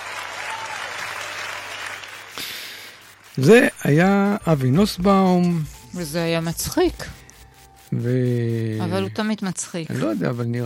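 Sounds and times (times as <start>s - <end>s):
audience applause: 0.0s - 4.0s
speech: 3.4s - 7.2s, 7.9s - 10.6s.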